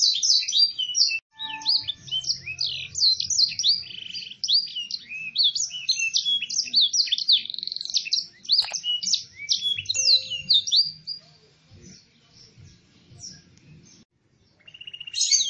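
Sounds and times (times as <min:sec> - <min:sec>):
canary singing in the cengkok mewah style with a clear voice: 0:00.0 - 0:11.2.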